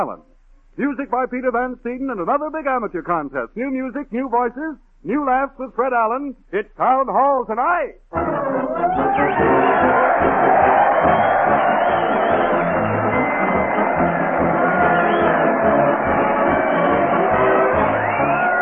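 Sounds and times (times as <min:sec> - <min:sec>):
speech: 0:00.0 - 0:08.8
large crowd cheering and shouting: 0:08.2 - 0:18.6.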